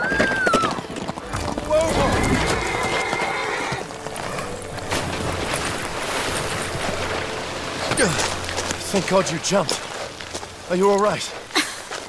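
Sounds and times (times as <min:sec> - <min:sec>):
horse whinnying sharply: 0:00.0 - 0:04.6
horse hooves pounding in a fast gallop: 0:00.0 - 0:12.0
speech: 0:08.9 - 0:09.9, 0:10.7 - 0:11.4.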